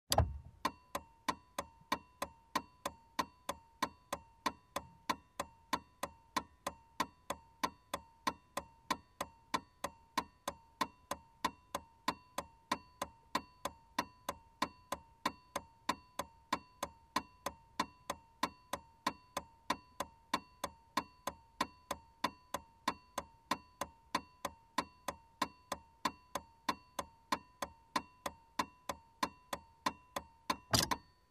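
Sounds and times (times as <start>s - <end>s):
car turn signal switching on and off: 0.1s - 31.0s.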